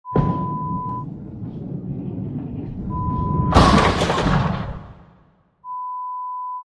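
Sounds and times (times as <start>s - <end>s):
bowling strike: 0.1s - 5.3s.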